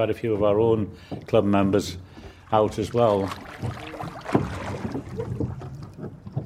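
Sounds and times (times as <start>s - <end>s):
speech: 0.0s - 4.4s
wind: 0.0s - 6.4s
water noise: 1.2s - 6.4s
oars splashing from a kit-built rowing boat: 1.3s - 6.4s.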